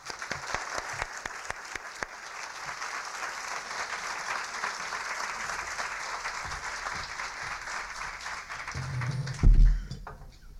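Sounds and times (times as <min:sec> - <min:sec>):
crowd applause: 0:00.0 - 0:10.0.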